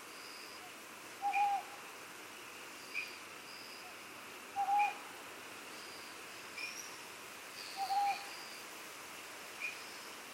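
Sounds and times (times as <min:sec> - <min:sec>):
insect hiss on Iriomote Island in Okinawa Japan: 0:00.0 - 0:10.3
owl hooting on Iriomote Island in Okinawa Japan: 0:01.2 - 0:01.7, 0:04.6 - 0:05.0, 0:07.8 - 0:08.4.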